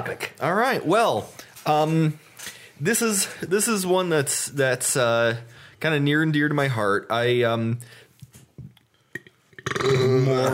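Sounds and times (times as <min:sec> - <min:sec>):
speech: 0:00.0 - 0:08.0, 0:09.8 - 0:10.5
loud drawn-out belch: 0:09.5 - 0:10.5.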